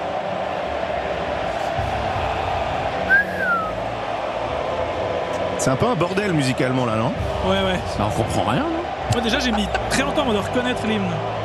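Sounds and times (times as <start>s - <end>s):
stadium crowd roaring: 0.0s - 11.4s
single shrill whistle in a stadium crowd: 3.1s - 3.8s
speech: 5.6s - 11.4s.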